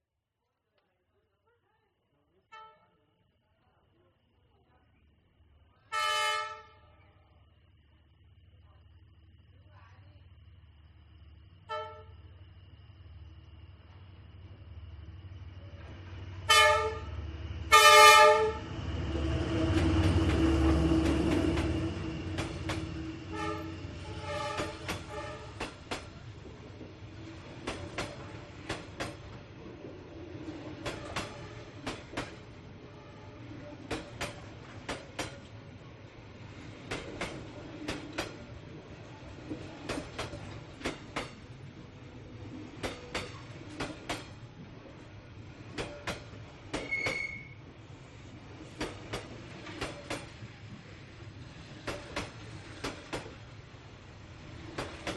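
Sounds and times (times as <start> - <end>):
train carriages passing in Hanoi Vietnam: 5.1 - 55.1
train horn in Hanoi Vietnam: 5.9 - 7.0, 11.7 - 12.3, 16.4 - 18.7, 23.2 - 25.6.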